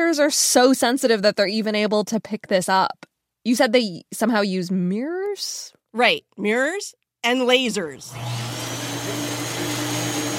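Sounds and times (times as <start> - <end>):
speech: 0.1 - 8.5
shoe-scrubbing machine at a gravitational wave observatory whirring: 8.1 - 10.3.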